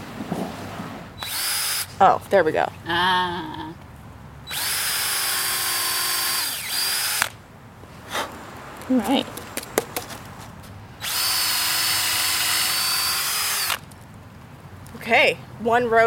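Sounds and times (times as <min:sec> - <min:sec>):
power drill boring holes in a log: 0:01.2 - 0:01.9, 0:04.5 - 0:07.4, 0:11.0 - 0:13.8
speech: 0:02.0 - 0:03.8, 0:08.9 - 0:09.4, 0:15.1 - 0:16.0.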